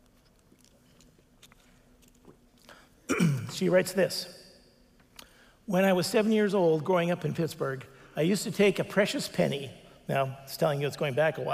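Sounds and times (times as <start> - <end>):
person sipping a drink: 0.0 - 3.2
low steady hum: 0.0 - 11.5
speech: 3.2 - 4.4, 5.7 - 11.5.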